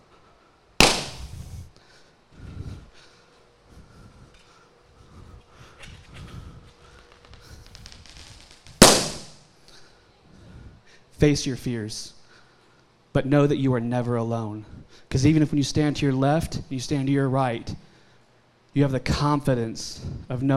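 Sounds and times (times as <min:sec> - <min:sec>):
firecracker pops: 0:00.8 - 0:01.5, 0:08.7 - 0:09.4
speech: 0:11.2 - 0:12.2, 0:13.2 - 0:17.9, 0:18.8 - 0:20.5.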